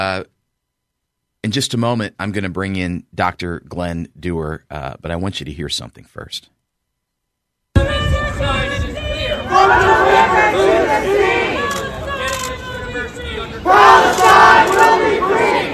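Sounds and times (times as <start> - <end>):
speech: 0.0 - 0.4, 1.4 - 6.6
crowd of protesters shouting on a university campus: 8.0 - 15.7.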